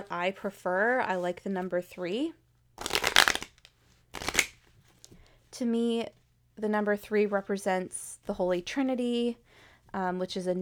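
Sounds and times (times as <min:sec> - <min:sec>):
speech: 0:00.0 - 0:02.4, 0:05.6 - 0:10.6
deck of oracle cards being shuffled: 0:02.8 - 0:05.2.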